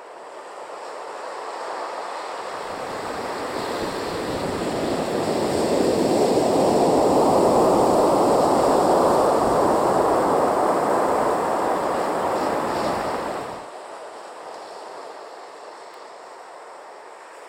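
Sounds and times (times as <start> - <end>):
waves washing onto a small beach: 0.0 - 17.4
wind noise: 2.4 - 13.8.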